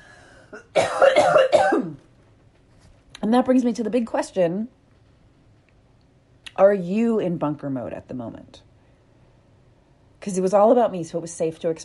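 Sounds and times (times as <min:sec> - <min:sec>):
hoarse coughing: 0:00.4 - 0:02.0
speech: 0:03.2 - 0:04.8, 0:06.6 - 0:08.7, 0:10.2 - 0:11.8.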